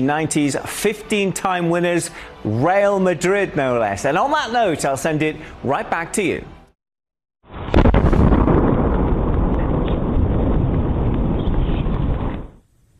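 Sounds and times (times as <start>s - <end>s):
speech: 0.0s - 6.6s
deep double boom from a 3-foot-wide meteor entering the atmosphere: 7.5s - 12.5s
heavy rolling rumble from a meteor entering the atmosphere: 7.7s - 12.6s.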